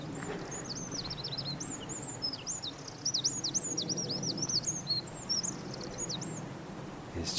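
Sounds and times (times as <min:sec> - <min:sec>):
wren singing on a rocky gorsy hillside above a coastal path: 0:00.0 - 0:06.5
low wind rumble on an exposed hillside: 0:00.0 - 0:07.3.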